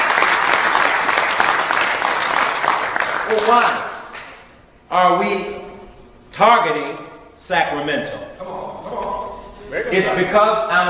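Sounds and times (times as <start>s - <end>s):
crowd applauding: 0.0s - 4.4s
speech: 3.4s - 3.9s, 4.9s - 5.7s, 6.3s - 10.8s.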